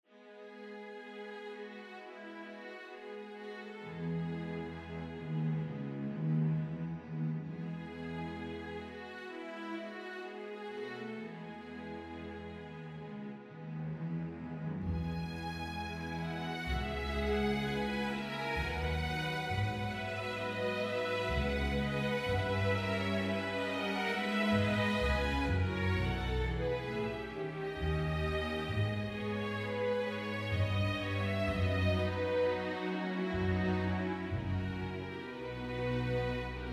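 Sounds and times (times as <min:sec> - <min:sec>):
string ensemble playing: 0:00.1 - 0:36.7.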